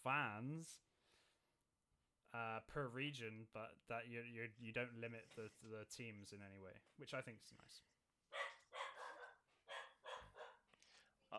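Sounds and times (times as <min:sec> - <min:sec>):
speech: 0:00.0 - 0:00.9, 0:02.3 - 0:07.9
dachshund barking: 0:08.3 - 0:10.7.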